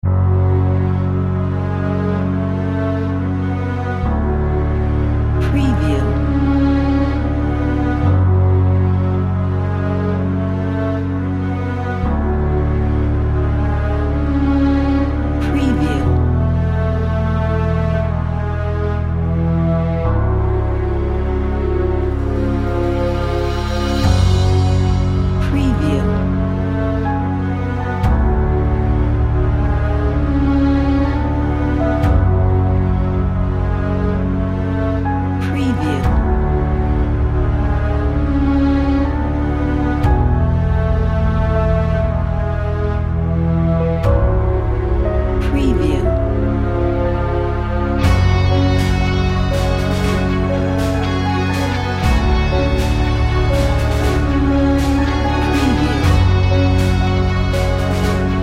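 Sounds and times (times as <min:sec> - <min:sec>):
calm cinematic music: 0:00.0 - 0:58.4.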